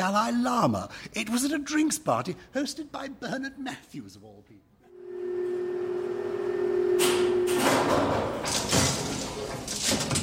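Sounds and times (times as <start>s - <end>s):
speech: 0.0s - 4.7s
steady low hum: 4.9s - 8.3s
old lift concertina doors sliding shut with metallic rattle: 7.0s - 10.2s.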